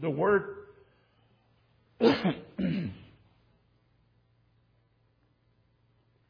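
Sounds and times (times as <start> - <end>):
throat clearing: 2.0 - 3.2.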